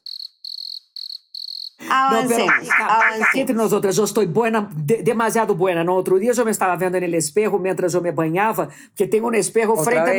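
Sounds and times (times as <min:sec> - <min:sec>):
crickets chirping: 0:00.0 - 0:01.9
speech: 0:01.9 - 0:10.1.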